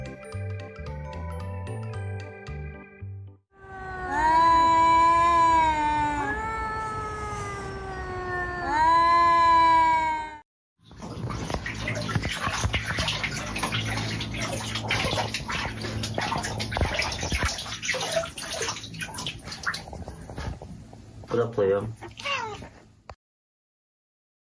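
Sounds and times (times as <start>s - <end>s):
cat meowing: 3.6s - 10.4s, 22.0s - 22.7s
rushing splashing water: 10.9s - 20.1s.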